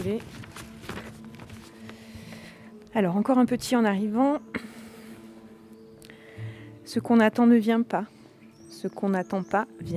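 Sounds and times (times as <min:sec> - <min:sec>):
speech: 0:00.0 - 0:00.5, 0:02.9 - 0:04.6, 0:06.9 - 0:08.2, 0:08.8 - 0:09.9
paper rustling and crinkling: 0:00.0 - 0:02.1.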